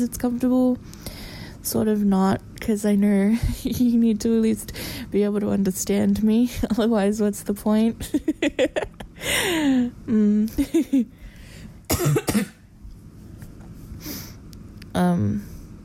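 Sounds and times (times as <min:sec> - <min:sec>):
speech: 0:00.0 - 0:11.2, 0:12.0 - 0:12.6, 0:15.0 - 0:15.5
person coughing in harsh raspy fits: 0:11.9 - 0:12.6.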